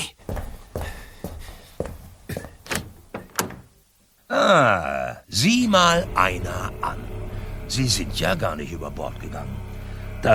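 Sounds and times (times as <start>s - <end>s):
yacht cabin door being opened: 2.4s - 3.8s
speech: 4.4s - 7.0s, 7.7s - 10.3s.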